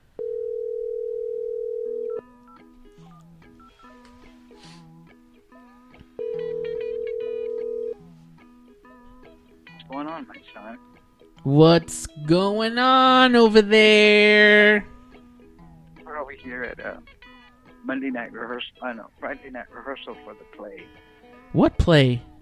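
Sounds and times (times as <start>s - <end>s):
outgoing phone call ringback tones: 0.2s - 4.0s, 6.2s - 8.0s
speech: 10.2s - 14.9s, 16.4s - 17.2s, 17.8s - 22.3s.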